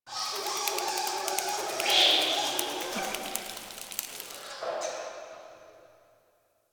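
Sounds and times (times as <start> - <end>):
bats: 0.1 - 4.6.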